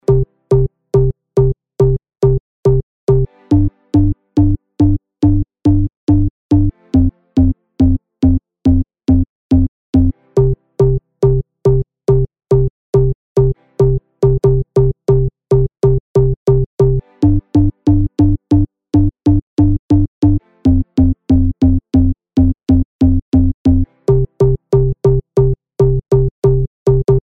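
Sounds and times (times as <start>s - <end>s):
bass EDM house music: 0.0s - 27.3s.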